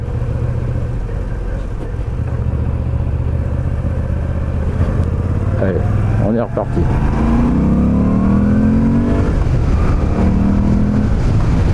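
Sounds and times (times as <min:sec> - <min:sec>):
custom-style motorcycle engine cruising at 4000 rpm: 0:00.0 - 0:11.7
road noise: 0:00.0 - 0:11.7
speech: 0:05.7 - 0:07.6
wind noise: 0:06.7 - 0:11.7.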